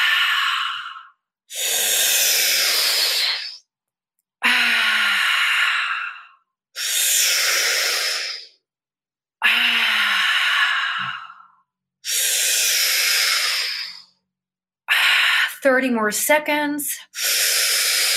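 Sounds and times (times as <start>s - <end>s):
slow deep breaths in and out: 0.0s - 3.6s, 4.4s - 8.7s, 9.4s - 14.2s, 17.0s - 18.1s
speech: 15.7s - 17.0s.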